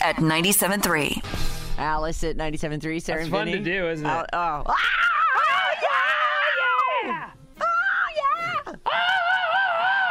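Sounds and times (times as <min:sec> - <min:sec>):
speech: 0:00.0 - 0:04.9, 0:07.1 - 0:07.3
rock-style vocal scream: 0:04.8 - 0:10.0.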